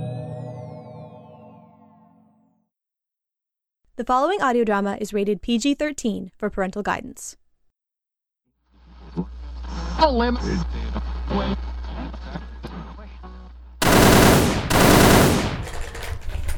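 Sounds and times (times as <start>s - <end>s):
speech: 4.0s - 7.4s, 10.0s - 12.5s
machine-gun burst sound effects: 13.8s - 16.5s.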